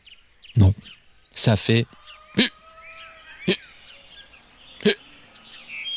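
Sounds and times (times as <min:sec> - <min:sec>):
birds chirping and twittering: 0:00.0 - 0:05.9
speech: 0:01.4 - 0:02.6
voice mimicking a hiccuping rooster: 0:02.4 - 0:02.6.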